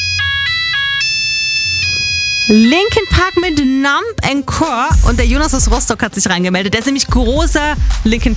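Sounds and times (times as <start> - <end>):
loud synthetic mobile phone ringtone melody: 0.2 - 4.5
speech: 2.5 - 8.3.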